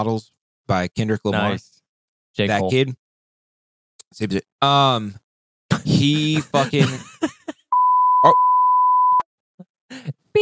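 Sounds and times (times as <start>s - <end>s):
vocal sounds: 0.0s - 1.6s, 2.4s - 3.0s, 4.1s - 7.1s
speech: 0.0s - 1.7s, 2.4s - 3.0s, 4.1s - 5.2s, 5.8s - 7.5s, 8.2s - 8.5s, 9.9s - 10.3s
laughter: 1.2s - 1.6s, 5.7s - 7.6s
loud steady electronic beep: 7.8s - 9.2s.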